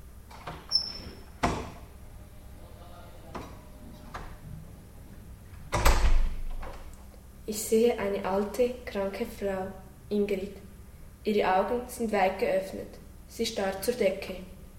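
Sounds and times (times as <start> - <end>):
door opening: 0.3 - 2.0, 2.6 - 4.8, 5.5 - 6.9
speech: 7.5 - 14.5.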